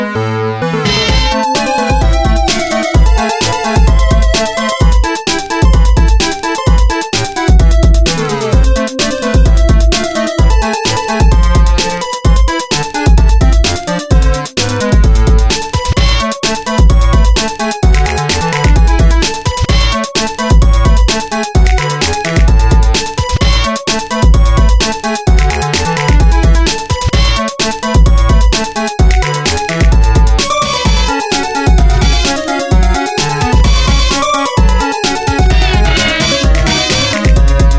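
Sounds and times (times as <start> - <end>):
heavy bass: 0.1 - 12.5, 13.2 - 37.7.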